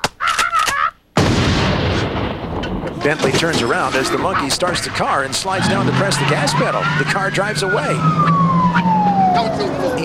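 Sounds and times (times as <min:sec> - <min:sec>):
pump shotgun blast through a roof with a rumbling tail: 0:01.2 - 0:04.2
speech: 0:03.0 - 0:10.0.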